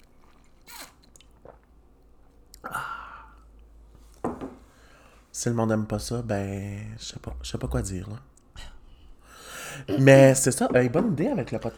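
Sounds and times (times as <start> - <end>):
soft mouth and swallowing noises: 0.0 - 1.8
sipping a drink: 0.0 - 3.5
speech: 5.4 - 8.3, 9.8 - 11.7.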